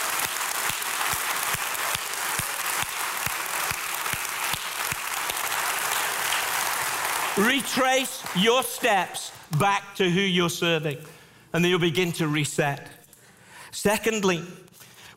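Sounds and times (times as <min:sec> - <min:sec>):
audience applauding: 0:00.0 - 0:09.7
speech: 0:07.4 - 0:13.0, 0:13.7 - 0:14.6.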